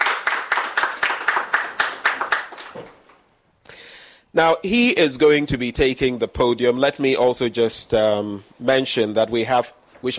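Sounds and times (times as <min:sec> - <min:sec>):
audience applauding with steady rhythmic clapping: 0:00.0 - 0:03.2
speech: 0:04.4 - 0:10.1.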